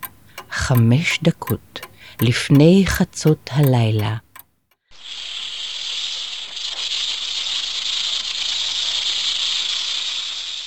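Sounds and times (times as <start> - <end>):
speech: 0.7 - 4.3
snake hissing: 5.0 - 10.6.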